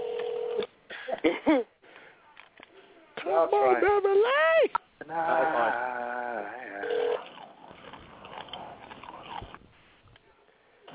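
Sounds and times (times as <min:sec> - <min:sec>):
telephone dial tone: 0:00.0 - 0:00.7, 0:06.8 - 0:07.3
speech: 0:01.2 - 0:01.7, 0:03.3 - 0:06.6.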